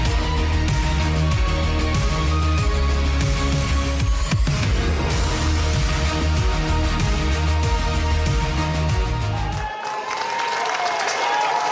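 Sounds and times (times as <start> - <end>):
booming music: 0.0 - 9.6
big stadium crowd roaring and cheering before kickoff: 9.2 - 11.6.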